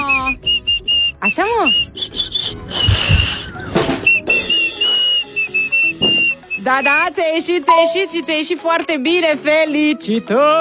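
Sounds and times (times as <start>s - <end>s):
child whistling: 0.0s - 7.1s
speech: 1.2s - 3.3s, 6.6s - 10.5s.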